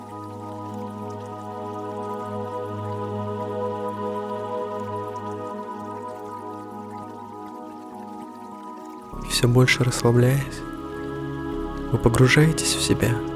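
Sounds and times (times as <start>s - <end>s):
babbling stream water trickling: 0.0s - 13.3s
sustained low humming drone: 9.1s - 13.3s
speech: 9.4s - 10.7s, 11.9s - 13.3s.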